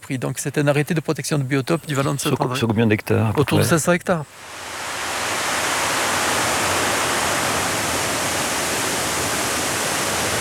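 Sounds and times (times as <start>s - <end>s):
speech: 0.1s - 4.8s
water flowing in a protected river valley: 4.2s - 10.3s.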